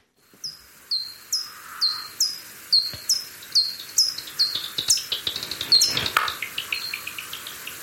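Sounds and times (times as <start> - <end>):
bat echolocation calls via bat detector: 0.3 - 7.8.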